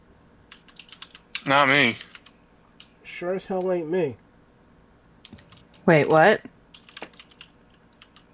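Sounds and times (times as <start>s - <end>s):
rapid typing on a computer keyboard: 0.5s - 2.9s, 5.2s - 5.8s, 6.7s - 8.3s
speech: 1.5s - 2.1s, 3.2s - 4.2s, 5.9s - 6.5s.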